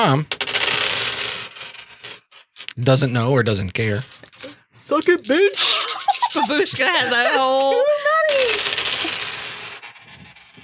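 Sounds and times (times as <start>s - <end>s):
speech: 0.0s - 0.4s, 2.8s - 4.2s, 4.9s - 5.7s, 6.3s - 8.4s
dice clattering across a hard tabletop: 0.3s - 2.4s, 3.8s - 7.5s, 8.3s - 10.6s
laughter: 5.6s - 8.6s.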